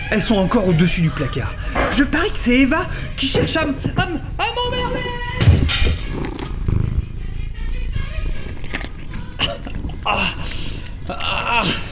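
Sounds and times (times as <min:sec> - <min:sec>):
speech: 0:00.1 - 0:05.4, 0:10.1 - 0:10.4, 0:11.1 - 0:11.8
cat purring: 0:01.7 - 0:11.2
rustling: 0:05.4 - 0:11.8.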